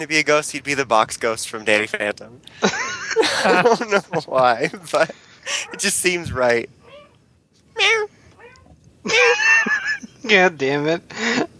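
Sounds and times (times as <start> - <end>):
speech: 0.0 - 6.8, 7.8 - 8.1, 10.3 - 11.4
laughter: 2.6 - 5.8, 9.1 - 10.4
cat chirping: 6.8 - 7.2, 7.8 - 8.8
cat meowing: 8.4 - 8.8.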